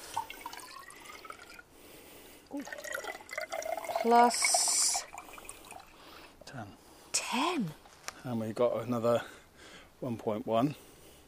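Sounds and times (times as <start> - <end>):
rainwater pouring out of a narrow glass rain gauge measuring tube: 0.0 - 1.7, 2.5 - 6.0
speech: 2.5 - 2.9, 4.0 - 4.6, 6.6 - 9.4, 10.0 - 10.8.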